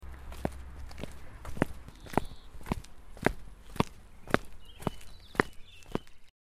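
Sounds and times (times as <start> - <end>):
walking on cobblestones: 0.0 - 6.3.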